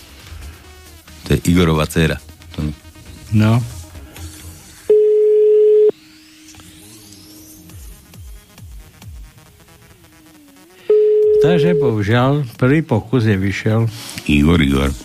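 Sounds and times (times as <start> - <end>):
speech: 1.3 - 3.7, 11.4 - 15.0
ringback tone of an unanswered telephone call: 4.9 - 6.0, 10.9 - 12.1.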